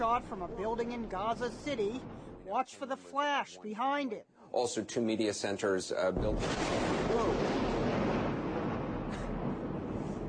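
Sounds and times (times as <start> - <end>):
large explosion roaring and rumbling: 0.0 - 2.5, 6.2 - 10.2
speech: 0.0 - 7.8.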